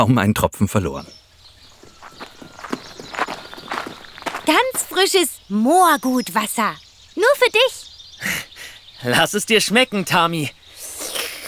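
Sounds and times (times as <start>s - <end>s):
speech: 0.0s - 1.2s, 4.5s - 8.3s, 9.0s - 10.6s
careful footsteps of walkers carrying fresh spring water: 1.5s - 5.4s.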